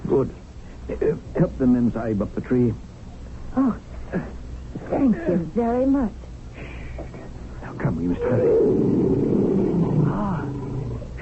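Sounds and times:
speech: 0.2 - 2.9, 3.6 - 6.2, 7.8 - 9.8
tiger roaring while hunting at night in the jungle: 8.1 - 11.2.

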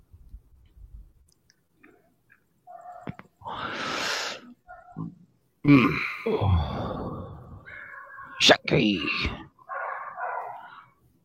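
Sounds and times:
dachshund barking: 2.7 - 3.2, 4.7 - 5.1, 9.6 - 10.9
speech: 5.7 - 7.2, 8.7 - 9.4.

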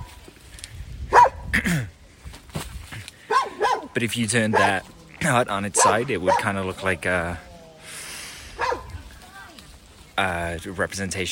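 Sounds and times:
dog barking: 1.1 - 1.4, 3.3 - 3.9, 4.5 - 4.8, 5.7 - 6.6, 8.6 - 8.9
speech: 1.6 - 2.0, 4.0 - 7.5, 10.2 - 11.3.

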